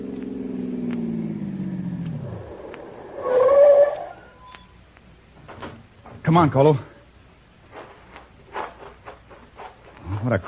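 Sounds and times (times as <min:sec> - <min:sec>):
car engine pulling away: 0:00.0 - 0:04.4
brief higher whine: 0:00.0 - 0:05.0
speech: 0:06.3 - 0:06.9, 0:10.3 - 0:10.4.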